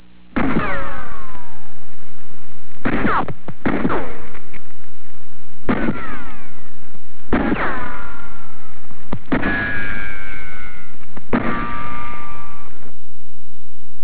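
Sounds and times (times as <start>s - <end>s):
rifle: 0.3s - 1.8s, 2.8s - 4.8s, 5.6s - 12.9s.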